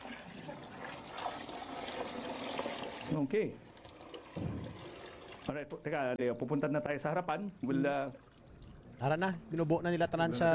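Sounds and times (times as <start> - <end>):
water pouring into a chunky mixture to thin it: 0.4 - 5.5
speech: 3.1 - 3.7, 4.4 - 4.8, 5.5 - 8.3, 9.0 - 10.5.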